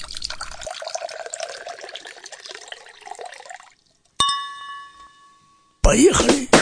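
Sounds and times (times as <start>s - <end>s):
drink pouring into a glass: 0.0s - 4.1s
glass clinking: 0.0s - 5.8s
speech: 5.9s - 6.5s.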